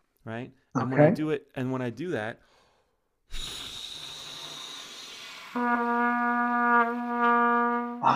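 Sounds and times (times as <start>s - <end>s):
speech: 0.2s - 2.6s, 5.5s - 8.1s
air blown through a brass mouthpiece: 3.3s - 8.1s.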